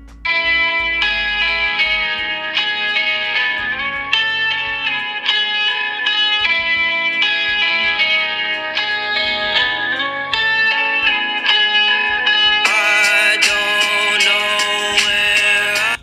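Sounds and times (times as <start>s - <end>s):
recorded song with effects-heavy guitar-led intro: 0.0s - 16.0s.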